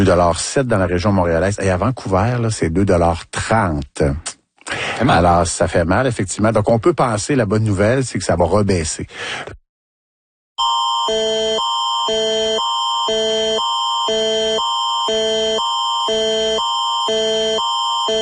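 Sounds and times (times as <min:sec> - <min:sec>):
speech: 0:00.0 - 0:04.4, 0:05.0 - 0:09.6, 0:11.1 - 0:11.3
public emergency alert system test tone alternating between two pitches: 0:10.6 - 0:18.2.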